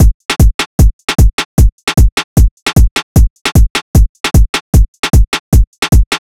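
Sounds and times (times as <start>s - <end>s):
Hip Hop drum loop at 152 BPM: 0.0s - 6.2s.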